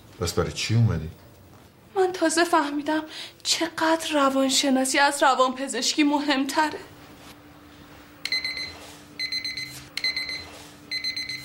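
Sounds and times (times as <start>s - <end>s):
speech: 0.2s - 1.3s, 2.2s - 7.0s
alarm clock beeping: 8.2s - 11.4s.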